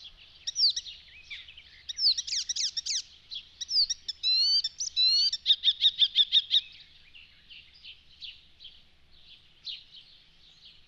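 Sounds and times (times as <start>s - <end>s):
icterine warbler chattering song: 0.0s - 10.8s.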